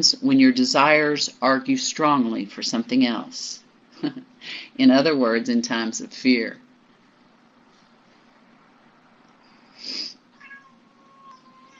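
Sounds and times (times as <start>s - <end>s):
speech: 0.0s - 6.6s
cat meowing: 10.3s - 11.7s.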